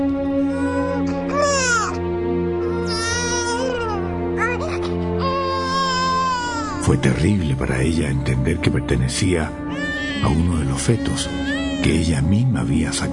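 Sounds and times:
baby wailing from inside a garbage bag: 0.5s - 2.0s, 2.6s - 6.9s, 9.7s - 12.2s
speech: 6.9s - 9.6s, 10.2s - 13.1s.

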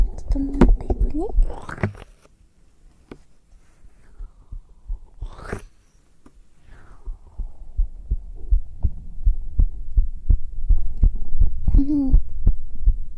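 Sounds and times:
soft voice: 0.0s - 2.1s, 11.7s - 12.2s
speech: 0.4s - 1.9s
human heartbeat against bare skin on a binaural dummy-head microphone: 4.1s - 5.4s, 6.8s - 13.1s.

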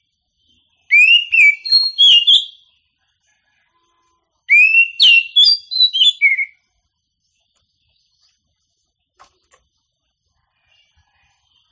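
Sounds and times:
Oriental magpie-robin song with rising whistles and sharp varied whistled notes: 0.9s - 2.6s, 4.5s - 6.6s.

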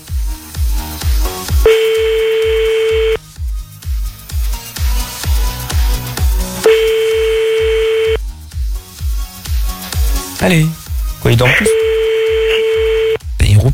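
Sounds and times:
loud rhythmic music beat: 0.0s - 13.7s
French-style telephone ringback tone: 1.7s - 3.2s, 6.7s - 8.2s, 11.6s - 13.2s
speech: 10.4s - 11.8s.

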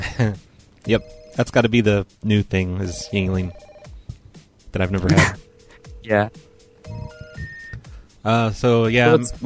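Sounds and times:
speech: 0.2s - 3.7s, 4.7s - 5.4s, 6.0s - 7.1s, 8.2s - 9.4s
phone ringing for incoming call with short electronic melody: 0.9s - 1.6s, 2.8s - 4.0s, 4.9s - 8.0s.

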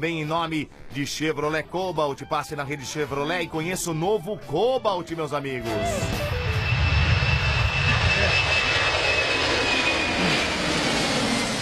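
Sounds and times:
speech: 0.0s - 6.4s
airplane engine droning overhead: 4.4s - 11.5s.

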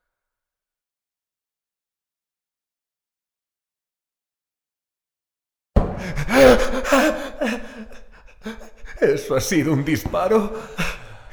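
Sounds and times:
frightened man gasping with rapid heavy breathing: 5.9s - 9.2s, 10.5s - 11.3s
laughter: 6.0s - 11.3s
speech: 6.1s - 11.0s.

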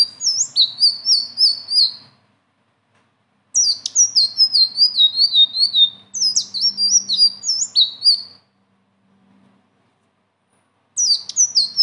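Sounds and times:
Leafbird song: 0.0s - 2.2s, 3.5s - 8.5s, 11.0s - 11.8s.

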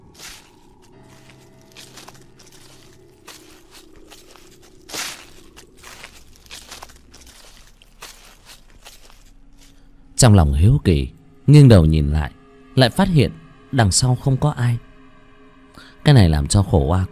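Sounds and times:
footsteps crunching on dry leaves: 0.0s - 9.9s
low hum: 0.0s - 17.1s
speech: 10.2s - 14.9s, 16.0s - 17.1s.

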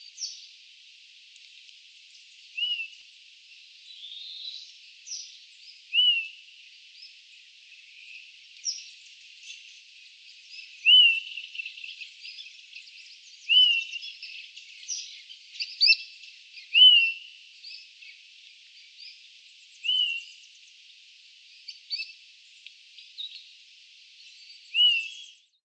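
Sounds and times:
bird singing high thin phrases of chirps and whistles: 0.0s - 0.5s, 2.0s - 3.0s, 3.7s - 23.6s, 24.2s - 25.6s
faint hiss: 0.0s - 25.4s.

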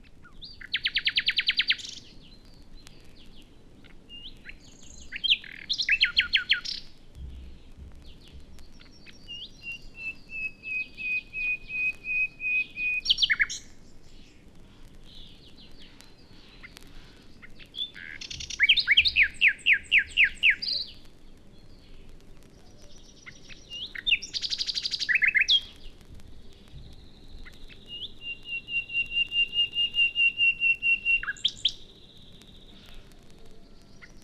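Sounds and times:
common nightingale singing: 0.0s - 34.2s.

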